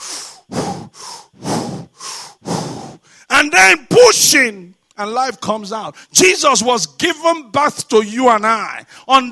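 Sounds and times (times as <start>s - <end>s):
voice imitating labored breathing: 0.0s - 3.3s
speech: 3.4s - 9.3s.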